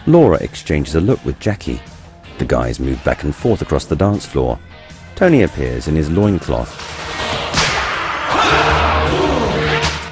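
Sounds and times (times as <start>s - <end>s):
speech: 0.1s - 7.0s
steady droning music: 1.8s - 10.0s
whip cracks on stage during a dance performance: 7.2s - 8.5s.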